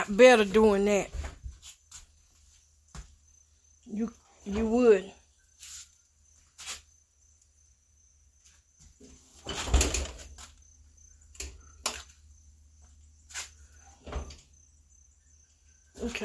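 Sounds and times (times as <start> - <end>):
speech: 0.1 - 1.2, 3.9 - 5.2, 16.0 - 16.2
oven door creaking open: 9.4 - 10.4, 14.0 - 14.5.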